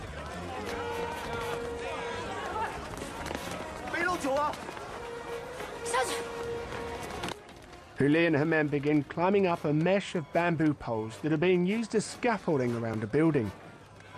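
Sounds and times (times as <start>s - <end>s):
voices and shouts: 0.0s - 7.0s
quick pounding footsteps of people running along a street: 0.0s - 14.1s
speech: 4.2s - 4.8s, 6.0s - 6.8s, 8.0s - 13.6s.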